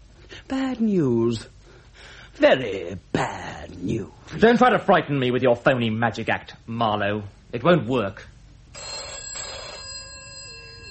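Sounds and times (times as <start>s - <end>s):
speech: 0.5s - 1.6s, 2.4s - 8.9s
telephone bell ringing with a metallic jangle: 8.7s - 10.8s.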